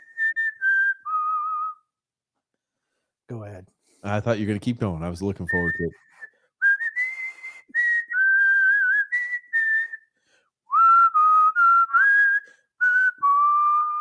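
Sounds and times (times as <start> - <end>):
person whistling a tune: 0.0 - 1.9, 5.5 - 13.9
speech: 3.3 - 6.1.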